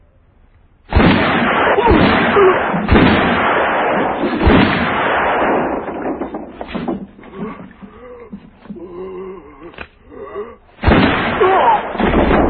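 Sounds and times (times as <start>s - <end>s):
continuous rumbling wash of noise: 0.0s - 12.4s
gunshots: 0.9s - 7.8s, 10.8s - 12.4s.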